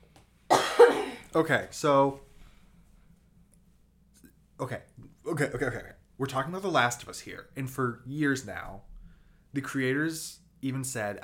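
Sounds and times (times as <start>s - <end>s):
person coughing: 0.5s - 1.3s
speech: 1.3s - 2.3s, 4.6s - 8.9s, 9.5s - 11.2s.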